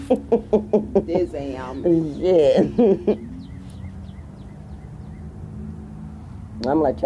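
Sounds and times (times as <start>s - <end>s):
laughter: 0.0s - 1.8s, 2.5s - 3.2s
speech: 0.1s - 3.3s, 6.6s - 7.0s
bird singing outdoors: 1.2s - 6.5s.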